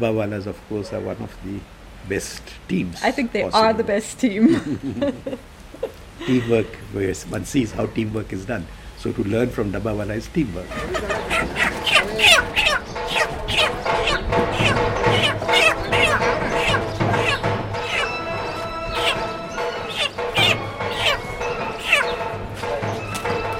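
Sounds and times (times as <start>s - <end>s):
speech: 0.0s - 12.6s
laughter: 4.4s - 6.7s, 10.6s - 12.6s
many chickens clucking and squawking: 10.6s - 23.5s
clattering thumps: 11.3s - 23.5s.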